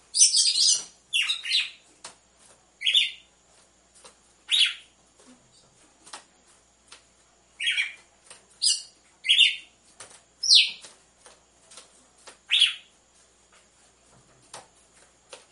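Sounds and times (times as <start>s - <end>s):
red-cowled cardinal song of brisk scratchy chirps: 0.1s - 1.8s, 2.8s - 3.3s, 4.4s - 4.9s, 7.6s - 9.8s, 10.4s - 10.9s, 12.4s - 12.9s.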